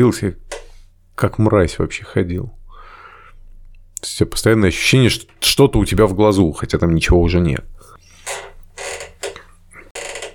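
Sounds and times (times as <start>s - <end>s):
speech: 0.0s - 0.6s, 1.2s - 2.6s, 4.0s - 8.5s
worn leather saddle creaking: 8.2s - 10.3s.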